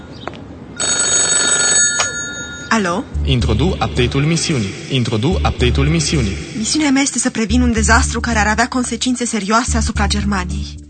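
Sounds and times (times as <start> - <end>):
telephone ringing with a buzzy electronic tone: 0.8 - 3.1
speech: 2.7 - 10.8.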